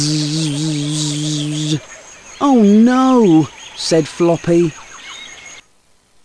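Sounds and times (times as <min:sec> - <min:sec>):
steady buzzing drone of a bee: 0:00.0 - 0:01.8
speech: 0:01.7 - 0:04.8.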